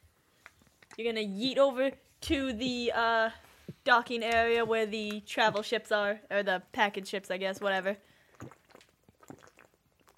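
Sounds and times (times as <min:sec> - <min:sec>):
speech: 0:01.0 - 0:08.5
person gulping and slurping water: 0:08.1 - 0:10.1.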